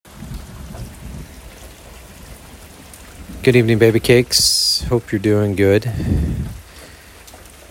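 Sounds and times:
rain falling during a thunderstorm: 0.0 - 7.6
low rumbling thumps of thunder: 0.1 - 5.1, 5.9 - 6.9
speech: 3.4 - 6.3.

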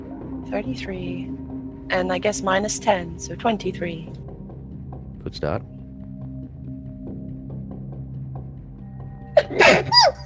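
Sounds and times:
speech: 0.5 - 4.2, 5.2 - 5.8
person sneezing: 9.4 - 10.1.

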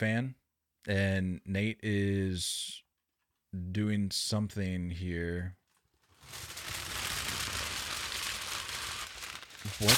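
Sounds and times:
speech: 0.0 - 2.8, 3.5 - 5.6, 9.6 - 9.9
aluminum foil sheet crinkling as a foil hat: 5.7 - 9.9.

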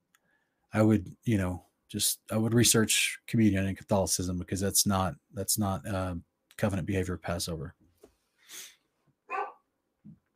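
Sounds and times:
speech: 0.7 - 7.8
dogs barking: 9.3 - 9.6.

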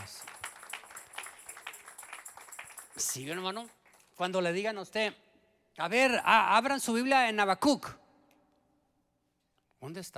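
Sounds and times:
audience applauding: 0.0 - 3.8
speech: 3.0 - 5.2, 5.8 - 8.0, 9.8 - 10.1.

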